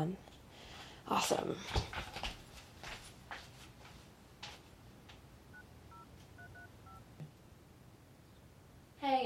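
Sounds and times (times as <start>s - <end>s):
speech: 0.0s - 0.3s, 1.0s - 2.2s
electronic telephone keypad tones dialing a phone number: 5.5s - 7.1s.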